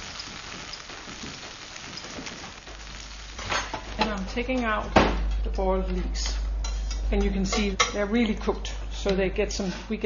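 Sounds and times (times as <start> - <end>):
capers sizzling and crackling while frying in a pan: 0.0 - 5.6, 6.2 - 8.1
speech: 4.2 - 6.4, 7.1 - 10.0.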